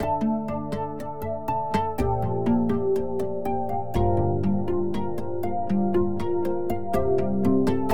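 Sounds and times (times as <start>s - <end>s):
synth pluck pad chord progression in D minor: 0.0s - 7.9s.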